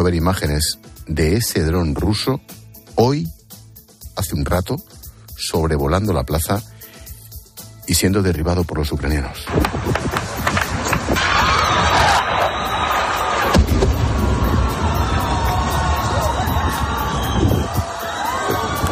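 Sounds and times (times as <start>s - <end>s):
speech: 0.0s - 3.4s, 4.2s - 6.7s, 7.9s - 10.2s
large outdoor crowd on a square in Kyiv Ukraine clapping: 9.6s - 18.9s
large outdoor crowd on a square in Kyiv Ukraine shouting and whooping: 11.0s - 18.9s
sharp bang: 13.5s - 14.3s.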